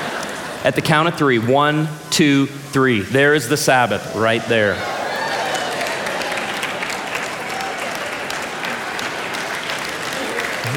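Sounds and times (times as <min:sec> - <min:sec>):
speech: 0:00.6 - 0:04.9
audience clapping as balloons are released: 0:05.2 - 0:10.7.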